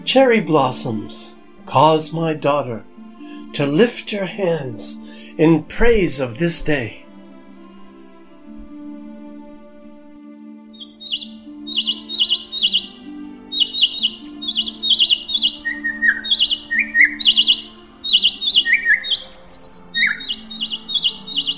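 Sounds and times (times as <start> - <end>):
speech: 0.0 - 2.9, 3.5 - 7.0
sparrow chirping: 10.8 - 21.5.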